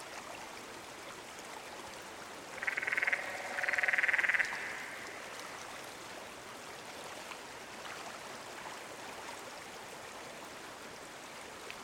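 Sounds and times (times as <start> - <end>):
canyon frog producing rapidly pulsed trills: 2.6 - 5.2.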